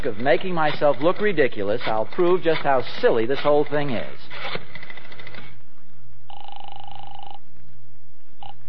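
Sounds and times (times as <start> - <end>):
speech: 0.0 - 4.7
long electronic telephone ring tone through the receiver: 6.3 - 7.4, 8.4 - 8.6.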